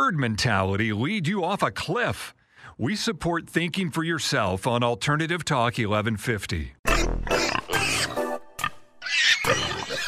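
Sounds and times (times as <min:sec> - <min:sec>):
speech: 0:00.1 - 0:07.5
pigs squealing: 0:06.9 - 0:08.2, 0:09.0 - 0:10.0.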